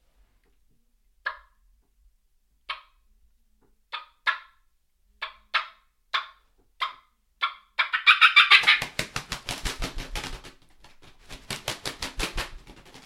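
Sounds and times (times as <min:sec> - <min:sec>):
hand-held turkey call clucking imitating wild turkeys: 0:05.2 - 0:08.9.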